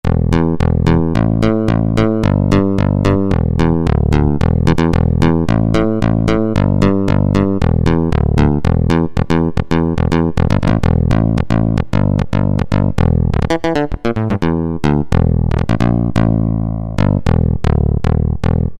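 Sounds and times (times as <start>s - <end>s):
Roland D-110 synth bass factory patch: 0.0s - 18.7s.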